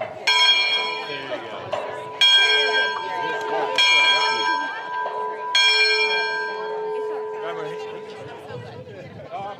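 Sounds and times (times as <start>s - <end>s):
large old belfry bell ringing: 0.0s - 9.0s
crowd murmur: 0.0s - 9.5s.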